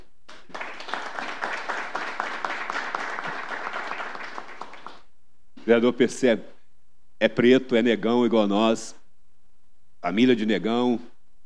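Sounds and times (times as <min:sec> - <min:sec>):
crowd applauding: 0:00.3 - 0:05.1
sharp individual claps: 0:00.3 - 0:05.1
speech: 0:05.7 - 0:06.5, 0:07.2 - 0:09.0, 0:10.0 - 0:11.1.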